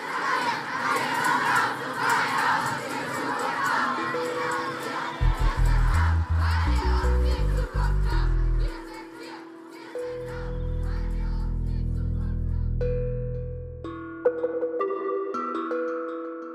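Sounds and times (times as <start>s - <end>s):
young crowd chanting and shouting at a climate protest demonstration in Berlin: 0.0s - 12.7s
low sustained musical tones: 4.0s - 16.5s.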